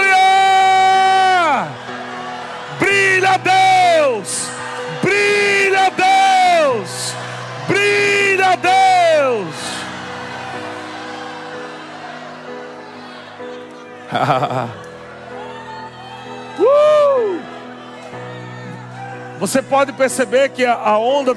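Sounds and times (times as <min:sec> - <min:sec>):
church audience shouting hallelujah in unison: 0:00.0 - 0:19.4
laughter: 0:09.5 - 0:15.2
speech: 0:14.2 - 0:14.8, 0:19.4 - 0:21.3.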